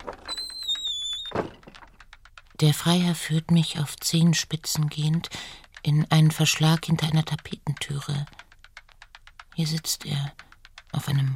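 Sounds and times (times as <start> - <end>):
door of a nobleman's estate swinging open with squealing hinges: 0.0 - 2.0
speech: 2.6 - 8.4, 9.6 - 11.3.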